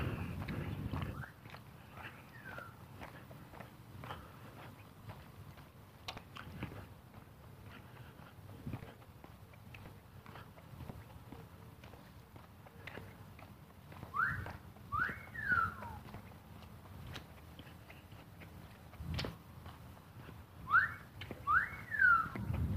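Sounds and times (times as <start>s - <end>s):
low rumbling outdoor noise: 0.0s - 22.7s
rising and falling whistles, possibly a parrot: 14.1s - 15.9s, 20.7s - 22.4s.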